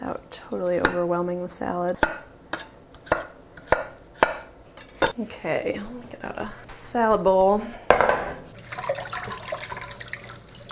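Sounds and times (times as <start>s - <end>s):
speech: 0.4s - 2.7s, 5.2s - 8.2s
running water from a tap splashing over lettuce in a sink: 8.5s - 10.6s.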